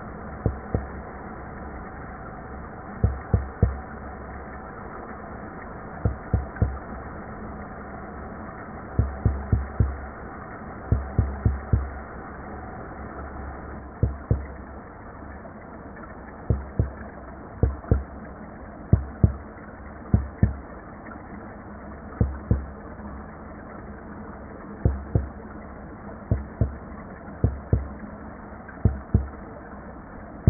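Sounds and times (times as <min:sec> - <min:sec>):
Umbrina cirrosa shi drum fish low frequency pulse: 0:00.0 - 0:01.9, 0:02.8 - 0:04.7, 0:06.0 - 0:07.3, 0:08.8 - 0:13.1, 0:13.8 - 0:14.6, 0:16.5 - 0:18.2, 0:18.9 - 0:19.5, 0:24.8 - 0:25.4, 0:26.3 - 0:28.0, 0:28.8 - 0:29.4.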